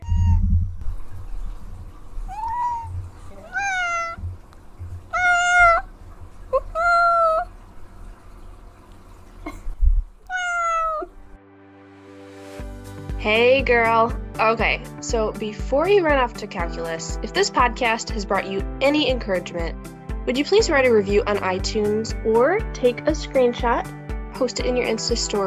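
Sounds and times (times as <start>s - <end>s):
cat meowing: 0.0s - 0.4s, 2.3s - 4.2s, 5.1s - 5.9s, 6.6s - 7.5s, 10.3s - 11.2s
low rumble: 0.0s - 11.4s
speech: 13.6s - 25.4s.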